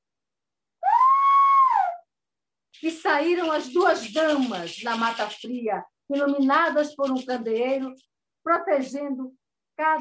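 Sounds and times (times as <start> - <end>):
whistle: 0.8 - 2.0
speech: 2.8 - 9.9.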